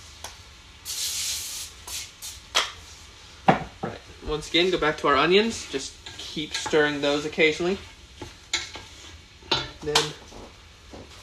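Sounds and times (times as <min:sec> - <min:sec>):
cooking spray hissing from an aerosol can onto a pan: 0:00.0 - 0:11.2
speech: 0:04.3 - 0:07.9.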